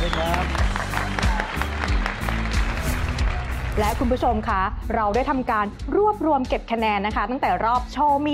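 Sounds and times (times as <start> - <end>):
audience clapping: 0.0 - 4.3
speech: 3.8 - 8.3.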